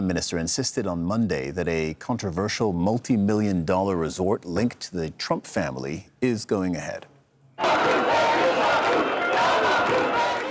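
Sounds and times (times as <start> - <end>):
speech: 0.0 - 7.1
large protest crowd chanting and shouting: 7.6 - 10.5.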